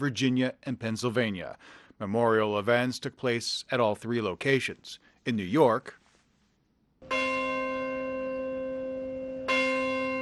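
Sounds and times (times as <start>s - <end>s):
speech: 0.0s - 6.0s
church bell tolling at a memorial: 7.0s - 10.2s.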